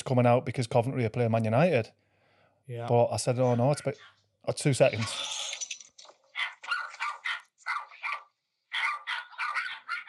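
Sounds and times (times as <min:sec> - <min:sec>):
speech: 0:00.1 - 0:02.0, 0:02.7 - 0:05.3
several dogs barking in a yappy chorus: 0:06.3 - 0:10.0.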